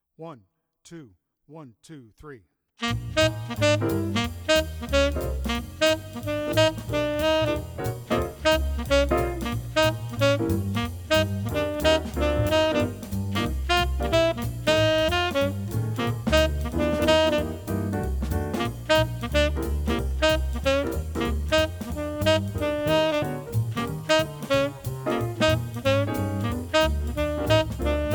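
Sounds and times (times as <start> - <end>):
tenor saxophone: 2.8 - 28.1.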